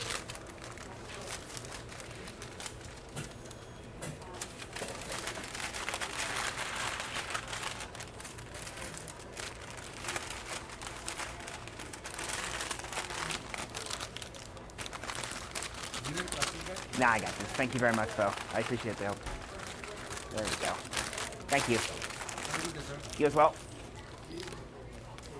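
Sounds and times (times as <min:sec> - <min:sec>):
large paper bag rustling and crinkling as it is handled and folded: 0:00.0 - 0:25.3
speech: 0:17.0 - 0:19.3, 0:20.4 - 0:22.0, 0:22.8 - 0:23.7.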